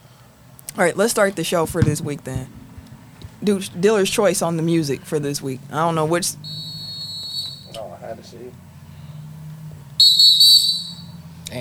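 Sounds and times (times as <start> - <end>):
faint low hum: 0.0 - 11.5
speech: 0.8 - 2.6, 3.4 - 6.6, 8.1 - 8.7
shrill high whistle blowing: 6.3 - 8.0, 10.0 - 11.3.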